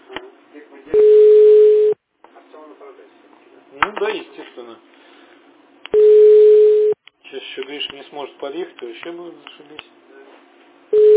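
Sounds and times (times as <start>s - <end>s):
telephone ringback tone while placing a call: 1.0s - 2.0s, 6.0s - 7.0s, 11.0s - 11.1s
speech: 3.8s - 5.0s, 7.6s - 10.0s.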